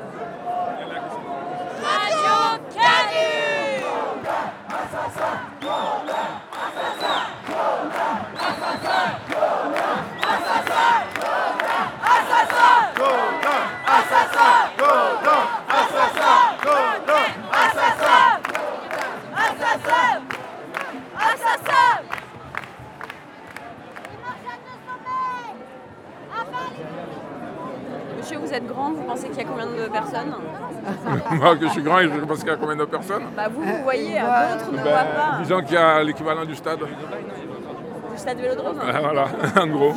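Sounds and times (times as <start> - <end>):
dense crowd of protesters shouting angrily: 0.4 - 20.2
speech: 28.3 - 37.5, 38.2 - 39.9
laughter: 30.8 - 32.3, 38.9 - 39.9.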